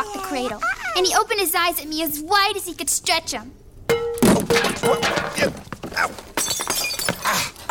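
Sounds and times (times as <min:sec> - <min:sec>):
speech: 0:00.3 - 0:03.6, 0:04.4 - 0:06.6
water pitcher crashing to the floor and shattering: 0:03.9 - 0:07.2
shards of a water pitcher clattering and ringing: 0:03.9 - 0:07.3.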